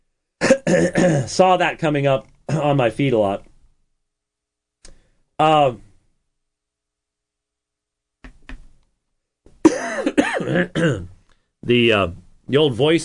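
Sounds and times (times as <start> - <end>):
rough coughing and hacking: 0.4 - 1.3, 9.6 - 11.1
throat clearing with a short voiced rasp: 0.4 - 1.3, 9.7 - 11.2
speech: 0.7 - 3.5, 5.4 - 5.9, 10.5 - 13.0.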